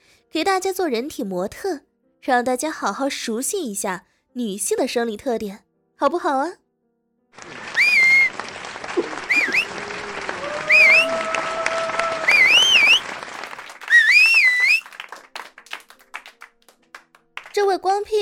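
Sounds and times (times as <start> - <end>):
speech: 0.3 - 6.6, 17.7 - 18.2
rowdy group cheering: 7.4 - 15.3
rowdy group clapping: 7.4 - 17.8
sharp looping whistles: 7.7 - 8.4, 9.2 - 9.8, 10.7 - 11.2, 12.2 - 13.1, 13.9 - 14.9.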